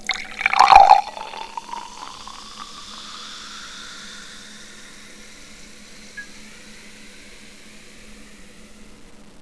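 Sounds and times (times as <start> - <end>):
cola and water: 0.0 - 2.8.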